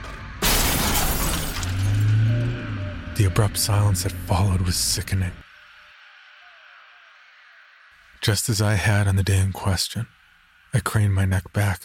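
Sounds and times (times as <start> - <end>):
metal crunching as car hits tree: 0.0 - 2.5
glass shattering in car crash into tree: 0.4 - 2.3
speech: 3.2 - 5.4, 8.2 - 11.8.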